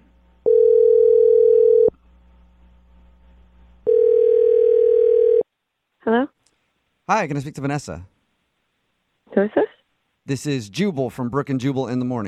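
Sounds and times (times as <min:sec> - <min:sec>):
telephone ringing tone: 0:00.5 - 0:01.9, 0:03.9 - 0:05.5
speech: 0:07.1 - 0:08.1, 0:09.4 - 0:12.2.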